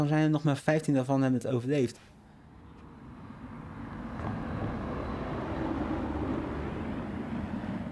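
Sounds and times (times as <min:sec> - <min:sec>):
speech: 0:00.0 - 0:02.2
car driving past on a street: 0:02.6 - 0:07.9.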